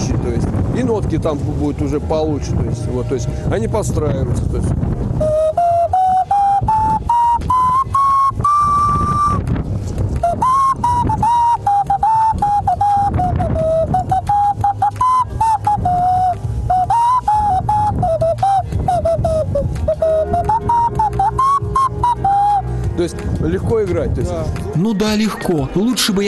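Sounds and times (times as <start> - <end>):
low rumble: 0.0 - 26.2
speech: 0.8 - 5.4, 24.0 - 26.2
clay whistle played by a novice: 5.2 - 9.6, 10.2 - 23.0.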